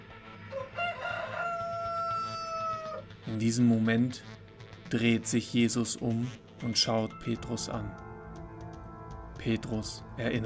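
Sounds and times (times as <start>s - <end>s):
rooster crowing: 0.4s - 3.0s
speech: 3.3s - 8.1s, 9.4s - 10.4s.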